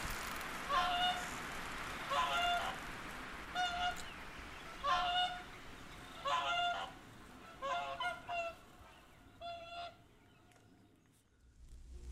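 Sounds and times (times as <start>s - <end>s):
two whooper swans calling overhead in flight: 0.6s - 1.4s, 2.0s - 2.9s, 3.5s - 4.0s, 4.7s - 5.5s, 6.2s - 10.0s.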